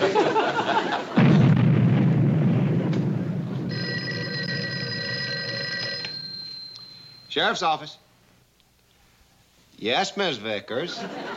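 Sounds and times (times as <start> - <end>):
laughter: 0.0 - 1.2, 10.8 - 11.3
dynamite blast at a road construction site: 1.1 - 3.8
speech: 7.4 - 8.0, 9.8 - 11.3.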